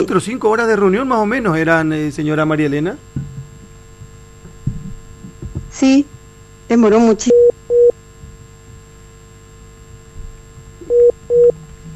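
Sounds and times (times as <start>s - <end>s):
speech: 0.0s - 3.2s, 5.8s - 7.5s
faint telephone line hum: 0.0s - 11.9s
call-waiting tone beeps on a telephone line: 7.3s - 7.9s, 10.9s - 11.5s.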